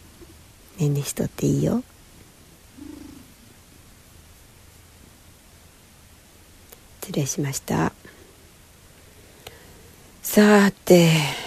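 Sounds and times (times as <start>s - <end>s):
steady hiss of noise: 0.0s - 11.4s
speech: 0.8s - 1.9s, 7.2s - 8.0s, 10.4s - 11.4s
cat purring: 2.7s - 3.5s.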